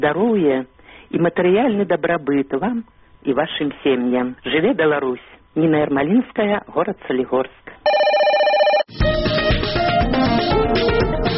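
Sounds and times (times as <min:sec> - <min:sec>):
speech: 0:00.0 - 0:08.0
loud electronic telephone bell ringing: 0:07.9 - 0:08.9
bright busy music: 0:08.9 - 0:11.3.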